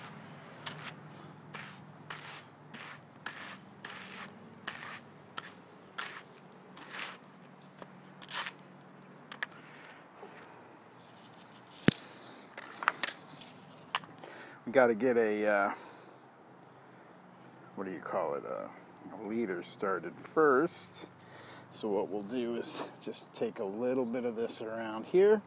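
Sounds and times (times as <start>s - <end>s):
wool lock being carded on hand cards: 0.0s - 14.6s
speech: 14.7s - 15.9s, 17.8s - 21.1s, 21.8s - 25.4s.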